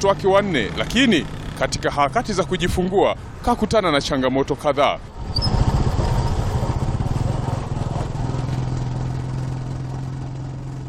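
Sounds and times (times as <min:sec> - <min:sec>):
motorcycle engine running during a ride on a rural route: 0:00.0 - 0:02.7, 0:05.1 - 0:10.8
speech: 0:00.0 - 0:05.4.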